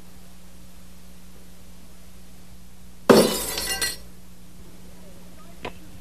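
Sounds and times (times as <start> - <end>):
glass bottle shot and shattering: 3.1 - 4.0.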